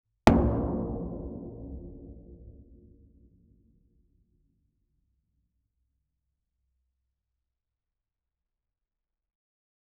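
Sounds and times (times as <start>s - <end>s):
large ancient drum: 0.3s - 3.3s.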